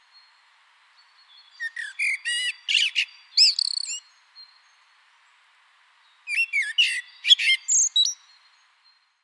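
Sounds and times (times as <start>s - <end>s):
common blackbird singing in spring: 1.3s - 4.0s, 6.3s - 8.4s.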